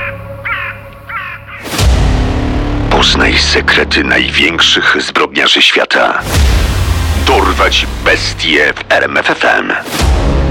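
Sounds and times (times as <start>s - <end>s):
crow cawing: 0.0s - 1.7s
speech: 3.0s - 10.4s
loud rush of broadband noise: 6.3s - 8.6s.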